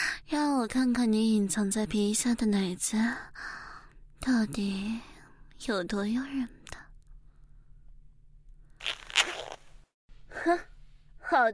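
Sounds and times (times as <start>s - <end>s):
speech: 0.3s - 3.6s, 4.2s - 6.6s, 10.4s - 10.7s, 11.3s - 11.5s
zipper on a garment being pulled open: 8.8s - 9.8s.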